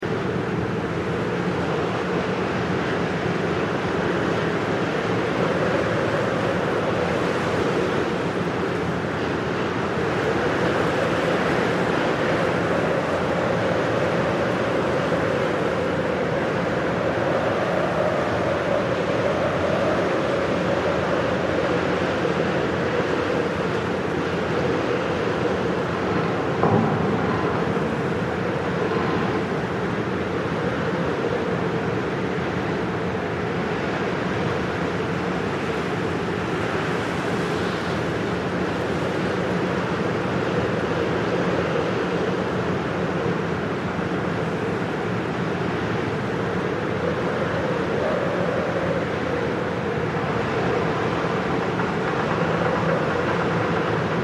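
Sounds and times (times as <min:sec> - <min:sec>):
ambience above a bridge: 0:00.0 - 0:54.2.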